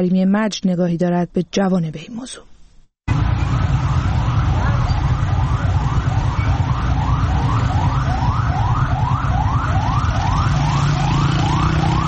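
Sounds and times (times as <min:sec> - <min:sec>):
speech: 0:00.0 - 0:02.5
fire engine and ambulance sirens wailing: 0:03.1 - 0:12.0
heavy steady rumble of city traffic: 0:03.1 - 0:12.0.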